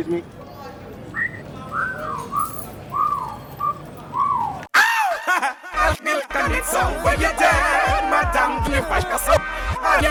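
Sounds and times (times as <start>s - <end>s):
speech: 0.0s - 0.4s, 6.0s - 10.0s
man whistling at a woman: 1.2s - 4.7s.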